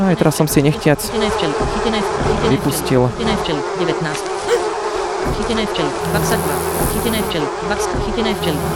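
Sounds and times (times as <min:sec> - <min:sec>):
speech: 0:00.1 - 0:04.6, 0:05.2 - 0:08.7
dense swarm of bees buzzing: 0:02.5 - 0:08.7.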